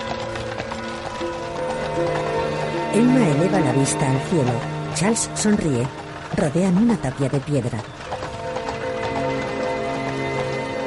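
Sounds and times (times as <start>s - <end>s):
hooves of a horse-drawn cart clip-clopping: 0.0s - 10.8s
sustained tonal music: 0.0s - 10.8s
speech: 2.9s - 8.1s.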